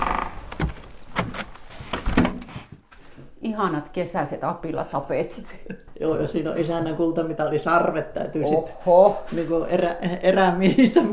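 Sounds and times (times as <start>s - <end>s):
door clunks and rattles: 0.0s - 2.5s
speech: 3.4s - 11.1s.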